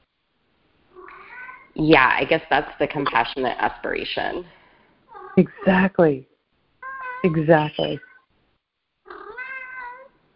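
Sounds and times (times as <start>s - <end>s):
male domestic cat meowing: 1.0s - 1.8s, 6.8s - 8.2s, 9.1s - 10.2s
speech: 1.8s - 4.6s, 5.4s - 6.3s, 7.2s - 8.1s.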